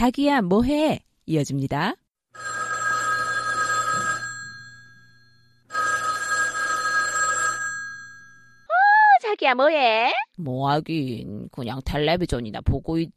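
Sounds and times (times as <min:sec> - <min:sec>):
speech: 0:00.0 - 0:02.6, 0:09.3 - 0:13.1
telephone ringing with electronic trilling: 0:02.4 - 0:08.7.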